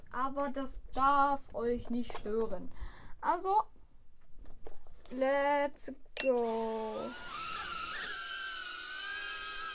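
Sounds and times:
speech: 0:00.1 - 0:03.8, 0:05.1 - 0:07.4
FPV drone motors whining while flying indoors inside a house: 0:06.7 - 0:09.7.

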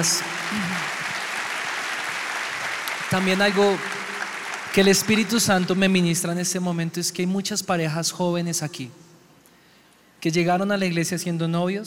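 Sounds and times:
speech: 0:00.0 - 0:00.6, 0:03.1 - 0:04.0, 0:04.7 - 0:09.1, 0:10.2 - 0:11.8
audience applauding: 0:00.0 - 0:06.1.

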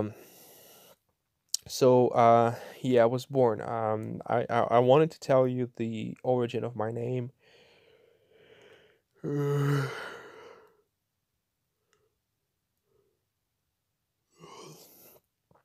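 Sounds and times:
speech: 0:01.7 - 0:07.4, 0:09.2 - 0:10.1
long loud human yawn, voiced and breathy: 0:09.2 - 0:10.6, 0:14.4 - 0:15.2.

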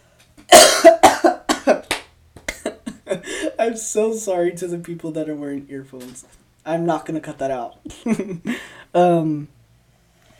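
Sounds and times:
harsh coughing fit: 0:00.5 - 0:01.8
speech: 0:03.7 - 0:09.6.

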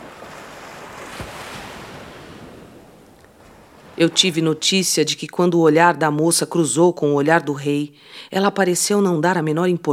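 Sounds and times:
ocean waves and surf: 0:00.0 - 0:05.5
speech: 0:04.0 - 0:09.9.

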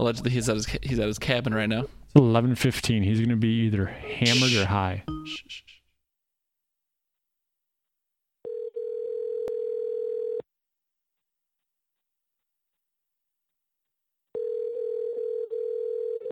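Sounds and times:
speech: 0:00.0 - 0:05.7
brief voice sound: 0:04.0 - 0:05.8
phone call ringback tone waiting for pickup: 0:08.4 - 0:10.4, 0:14.4 - 0:16.3.

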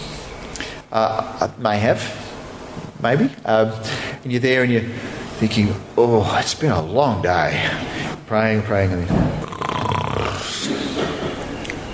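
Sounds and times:
speech: 0:00.9 - 0:02.2, 0:03.0 - 0:09.4
person imitating a snore: 0:09.4 - 0:10.8.

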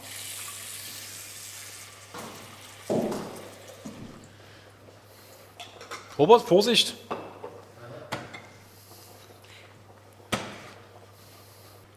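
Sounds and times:
water running from a kitchen tap into a small pot: 0:00.0 - 0:04.3
speech: 0:06.2 - 0:07.1.

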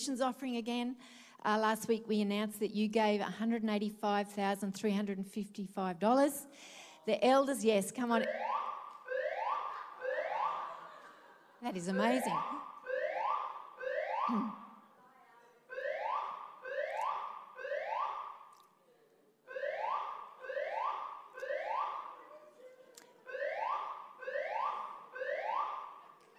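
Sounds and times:
speech: 0:00.0 - 0:08.7, 0:11.6 - 0:12.6
fire alarm blaring whooping tones: 0:08.2 - 0:11.1, 0:11.8 - 0:14.8, 0:15.7 - 0:18.5, 0:19.5 - 0:22.2, 0:23.2 - 0:26.0
laughter: 0:09.6 - 0:12.6.

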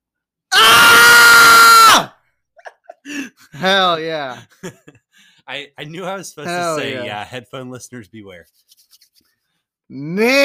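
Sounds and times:
man's excited scream: 0:00.5 - 0:02.2, 0:06.5 - 0:07.2, 0:10.0 - 0:10.4
speech: 0:03.6 - 0:08.7, 0:09.9 - 0:10.4.

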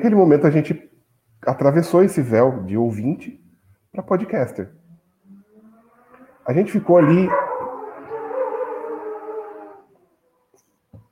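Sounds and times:
speech: 0:00.0 - 0:04.8, 0:06.4 - 0:07.5
motorcycle passing outside: 0:04.6 - 0:10.4
dog howling outside: 0:05.8 - 0:10.2.

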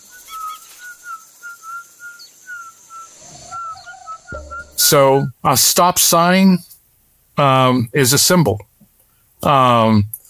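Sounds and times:
person whistling short clear notes: 0:00.0 - 0:04.9
speech: 0:04.8 - 0:06.7, 0:07.4 - 0:08.7, 0:09.4 - 0:10.2.

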